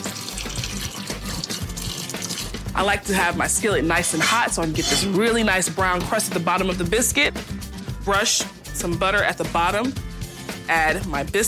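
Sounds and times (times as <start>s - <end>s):
water running from a tap while washing hands: 0.0s - 2.8s
speech: 2.8s - 10.0s, 10.7s - 11.4s.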